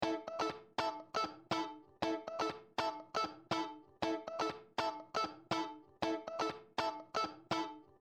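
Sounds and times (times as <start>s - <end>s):
funk guitar in a room: 0.0s - 7.9s.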